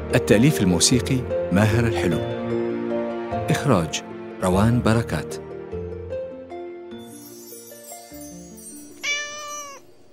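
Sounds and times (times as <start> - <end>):
speech: 0.1 - 2.6, 3.5 - 5.5
small cat meowing: 9.0 - 9.9.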